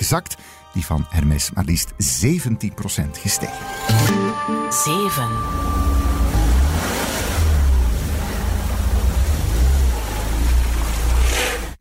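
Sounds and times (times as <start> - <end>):
speech: 0.1 - 6.1
car engine revving and idling while parking in a parking garage: 5.4 - 11.7.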